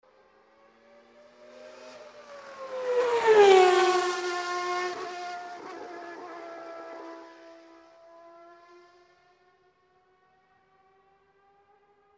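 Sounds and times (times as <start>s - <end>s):
vehicle passing by fast close to the microphone: 0.6s - 9.1s.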